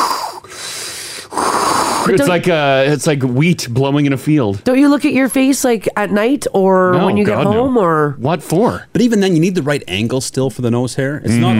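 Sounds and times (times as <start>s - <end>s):
voice imitating heavy nasal breathing: 0.0s - 2.2s
speech: 2.0s - 11.5s.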